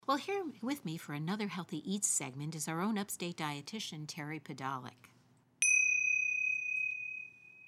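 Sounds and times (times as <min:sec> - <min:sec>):
speech: 0:00.1 - 0:05.1
meditation bell ringing: 0:05.6 - 0:07.6.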